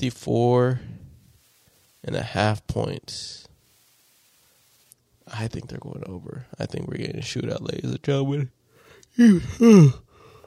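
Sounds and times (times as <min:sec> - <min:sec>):
speech: 0:00.0 - 0:00.9, 0:02.0 - 0:03.5, 0:05.3 - 0:08.6, 0:09.2 - 0:10.0
person yawning: 0:09.1 - 0:10.2.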